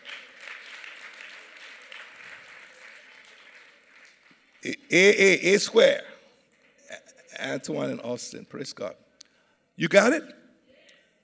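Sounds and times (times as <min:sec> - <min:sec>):
applause from a church congregation during a sermon: 0:00.0 - 0:04.8
speech: 0:04.6 - 0:06.1, 0:07.5 - 0:09.0, 0:09.8 - 0:10.4.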